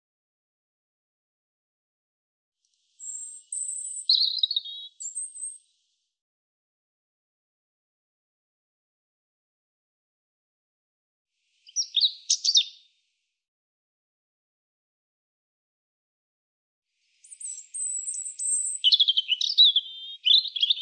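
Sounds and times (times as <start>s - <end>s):
European robin singing: 3.0s - 5.6s, 11.6s - 12.9s, 17.2s - 20.8s.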